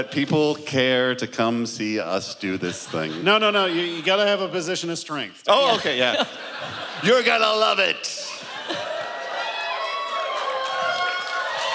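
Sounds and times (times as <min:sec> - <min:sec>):
speech: 0:00.0 - 0:08.9
laughter: 0:02.0 - 0:04.8, 0:05.5 - 0:09.4
live audience cheering: 0:06.8 - 0:11.7
scattered shouts and whoops from a live audience: 0:08.3 - 0:11.7.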